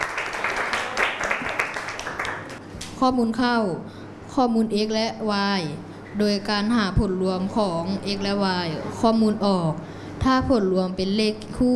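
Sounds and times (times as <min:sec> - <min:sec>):
classroom of students applauding: 0:00.0 - 0:02.6
speech: 0:03.0 - 0:11.7.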